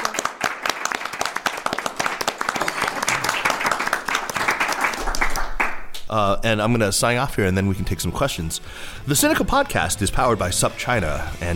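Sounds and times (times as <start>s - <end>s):
audience applause: 0.0s - 5.8s
speech: 6.1s - 11.5s.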